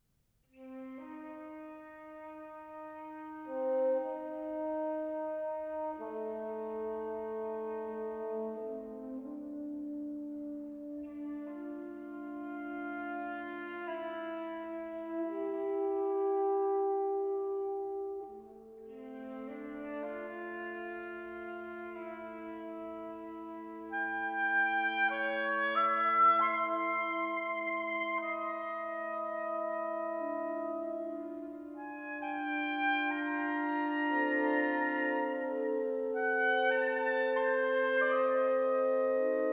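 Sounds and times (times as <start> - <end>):
oboe playing an aria with a wind quintet: 0.5 - 39.5
wind quintet playing: 0.5 - 39.5.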